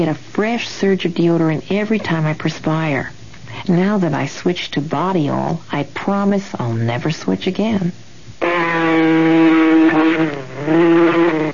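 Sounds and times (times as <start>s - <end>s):
speech: 0.0s - 8.0s, 10.0s - 11.0s
mosquito buzzing as it circles: 8.4s - 11.5s.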